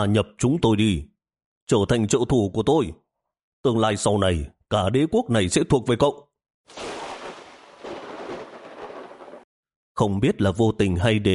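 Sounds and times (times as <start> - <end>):
speech: 0.0 - 1.1, 1.7 - 3.0, 3.6 - 6.9, 10.0 - 11.3
rolling thunder during rain: 6.7 - 9.4.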